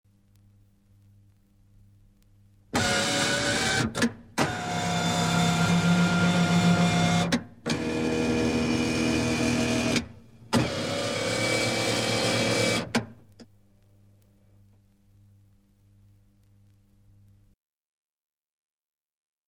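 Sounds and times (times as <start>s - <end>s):
electric car window regulator motor: 2.8s - 13.1s.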